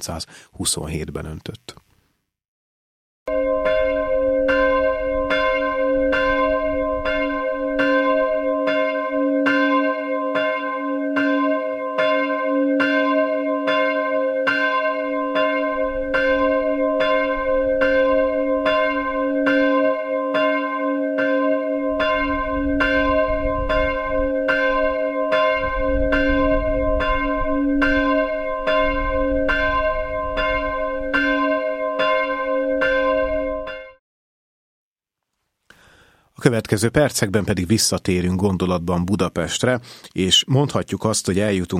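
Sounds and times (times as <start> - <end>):
speech: 0.0 - 1.9, 36.5 - 41.7
small church bell tuned to C tolling: 3.3 - 34.0.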